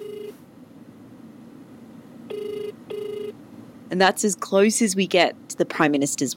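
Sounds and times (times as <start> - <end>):
telephone ringback tone heard down the line: 0.0 - 0.4, 2.3 - 3.4
speech: 3.9 - 6.3.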